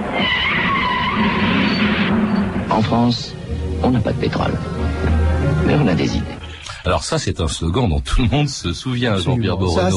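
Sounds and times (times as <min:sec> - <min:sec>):
car tires screeching as the car brakes hard and skids: 0:00.0 - 0:03.1
speech: 0:02.8 - 0:09.9.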